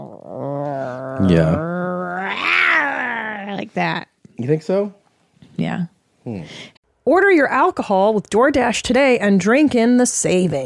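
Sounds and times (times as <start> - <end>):
voice imitating a violent growling fart: 0.0 - 3.6
speech: 1.2 - 1.7, 3.6 - 5.0, 5.6 - 10.6.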